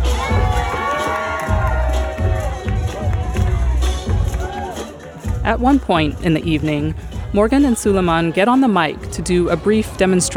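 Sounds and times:
excited shouts: 0:00.0 - 0:03.8
dense crowd cheering and whooping at a dance party: 0:00.0 - 0:05.3
steady thumping bass beat: 0:00.0 - 0:08.4, 0:09.0 - 0:10.3
speech: 0:05.5 - 0:10.3.

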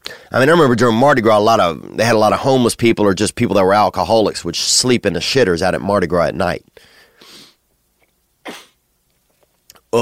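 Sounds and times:
speech: 0:00.3 - 0:06.9
throat clearing with phlegm: 0:08.4 - 0:08.8.

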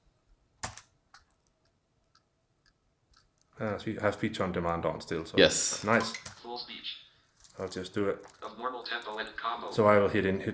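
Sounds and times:
keys on a computer keyboard pressed: 0:00.6 - 0:02.2, 0:06.0 - 0:06.4
speech: 0:03.6 - 0:10.5.

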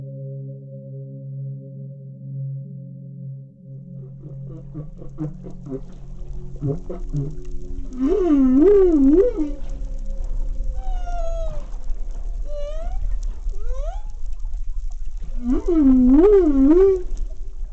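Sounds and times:
humpback whale song: 0:03.8 - 0:17.7
low rumbling ocean background: 0:03.8 - 0:17.7.

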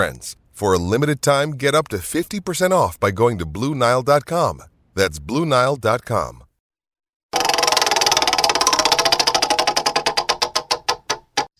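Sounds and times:
speech: 0:00.0 - 0:06.5
prize wheel spinning: 0:07.4 - 0:11.0.

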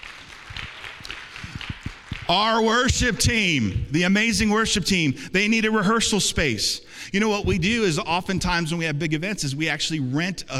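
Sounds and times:
congregation applauding: 0:00.0 - 0:03.9
speech: 0:02.3 - 0:10.5.

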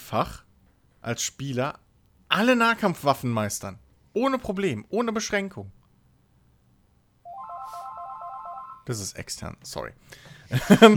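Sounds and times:
speech: 0:00.1 - 0:00.4, 0:01.0 - 0:05.8, 0:08.8 - 0:10.9
landline telephone base station ringing with electronic trill: 0:07.3 - 0:08.9
laughter: 0:10.5 - 0:10.9.

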